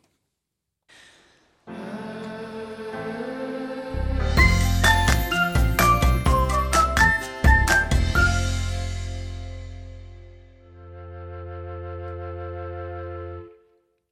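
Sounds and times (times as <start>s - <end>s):
pop song played on the radio: 1.7s - 8.3s.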